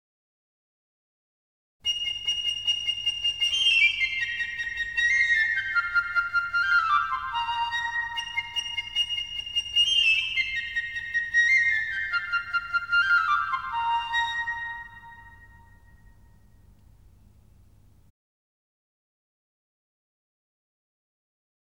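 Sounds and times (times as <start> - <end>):
piccolo playing: 1.8 - 16.7.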